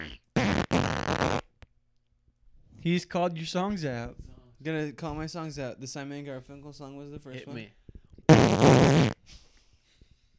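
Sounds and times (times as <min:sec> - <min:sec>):
loud drawn-out raspy fart: 0:00.0 - 0:01.6, 0:08.3 - 0:09.2
speech: 0:02.8 - 0:09.4.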